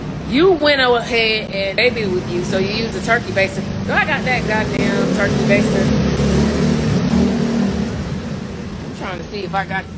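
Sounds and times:
speech: 0.3 - 6.0, 9.1 - 9.9
loud motorcycle engine revving: 1.6 - 9.2.

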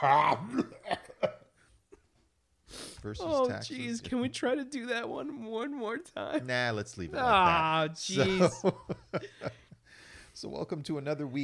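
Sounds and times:
speech: 0.0 - 0.8, 3.0 - 9.4, 10.4 - 11.4
harsh coughing: 0.0 - 1.5.

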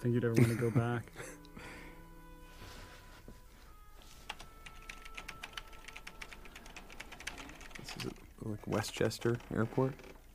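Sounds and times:
speech: 0.0 - 1.7, 8.4 - 10.2
typing on a keyboard added as an exaggerated sound effect: 4.3 - 8.2.

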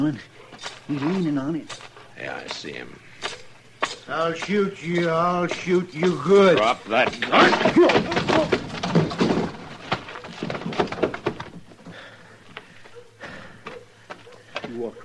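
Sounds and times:
speech: 0.0 - 3.4, 4.1 - 8.6
heavy thumps and scuffling as a drunk man is punched and knocked down: 5.0 - 12.1.

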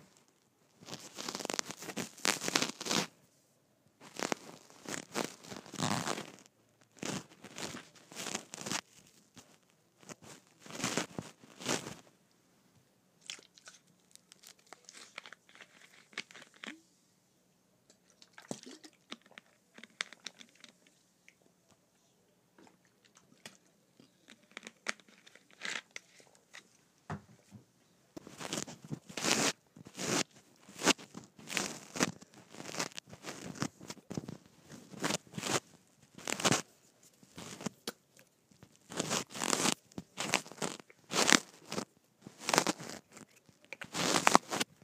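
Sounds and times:
shirt fabric rustling against a clip-on microphone: 0.8 - 3.1, 4.0 - 12.1, 28.2 - 37.7, 38.6 - 43.2, 43.9 - 44.8.

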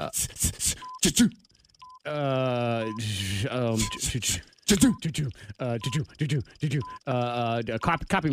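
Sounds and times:
people talking animatedly during a game: 0.0 - 1.3, 2.1 - 8.3
person vocally imitating a telephone ring: 0.6 - 7.6
faint electronic beeps: 0.7 - 8.3.

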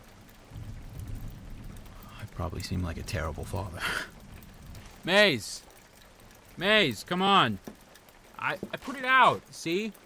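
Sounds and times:
steady rain: 0.0 - 10.0
low rumble: 0.4 - 5.0
speech: 2.4 - 4.2, 5.0 - 5.7, 6.6 - 7.8, 8.4 - 10.0.

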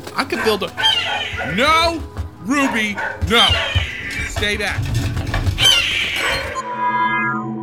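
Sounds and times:
speech: 0.2 - 3.8, 4.4 - 5.0
hawk screeching inside a house: 0.4 - 1.6, 3.3 - 4.8, 5.4 - 7.5.

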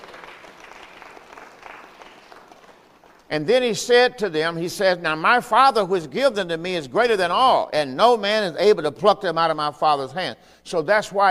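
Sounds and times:
audience clapping: 0.0 - 3.4
speech: 3.3 - 11.2.

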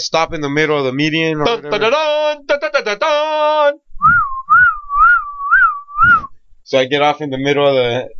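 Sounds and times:
speech: 0.0 - 3.8, 6.7 - 8.1
harsh buzzy vocal sounds: 1.2 - 4.7
person at an open car door whistling to call someone over: 4.0 - 6.4.

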